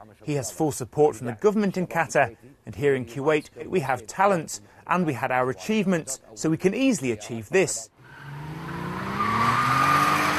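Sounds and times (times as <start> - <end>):
speech: 0.0 - 8.0
Porsche engine roaring on a small race track: 8.0 - 10.3
Porsche tires squealing on a small race track: 8.0 - 10.3.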